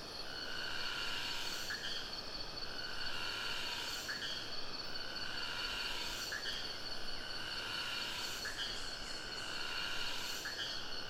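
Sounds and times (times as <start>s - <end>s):
cicada drone in the Sumatra jungle close to a river in Ketambe Aceh: 0.0s - 11.0s.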